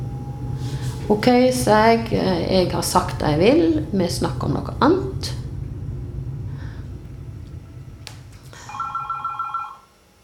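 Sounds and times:
low hum: 0:00.0 - 0:10.2
speech: 0:01.1 - 0:05.4
landline telephone ringing with a bright warbling trill: 0:08.7 - 0:09.9.

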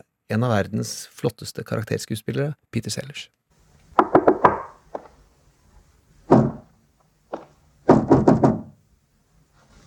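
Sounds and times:
speech: 0:00.3 - 0:03.4
firm knocks on a wooden door: 0:04.0 - 0:05.1, 0:06.3 - 0:06.7, 0:07.4 - 0:08.8.

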